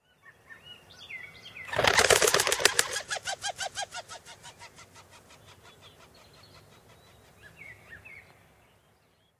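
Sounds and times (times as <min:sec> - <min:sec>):
wings whirring in flight: 0:01.7 - 0:05.6.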